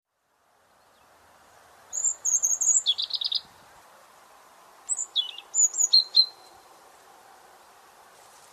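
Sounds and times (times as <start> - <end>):
steady low hiss: 0.1 - 8.5
European robin singing thin high warbled phrases: 1.9 - 3.6, 4.9 - 6.5.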